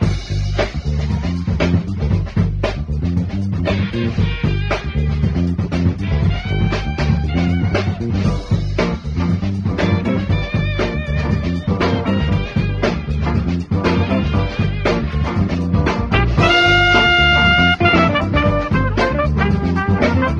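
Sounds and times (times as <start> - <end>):
phonk music loop with guitar, horns and bass: 0.0 - 20.3.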